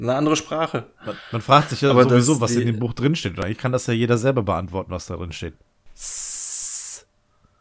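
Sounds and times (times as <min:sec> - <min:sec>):
speech: 0:00.0 - 0:06.3
voice making a snake-like hiss: 0:05.9 - 0:07.1.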